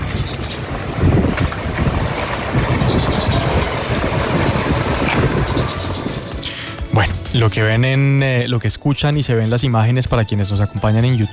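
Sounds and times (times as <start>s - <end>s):
wind buffeting the microphone: 0.0s - 7.4s
sewage water gushing from an overflowing street drain in Santa Marta: 0.0s - 7.5s
speech: 7.4s - 11.3s.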